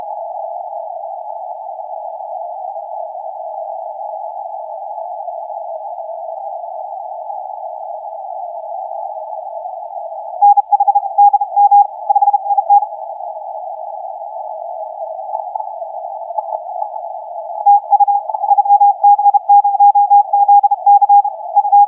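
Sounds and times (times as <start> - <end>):
CW morse code tones on the 30m band: 10.4 - 12.8, 17.6 - 21.8.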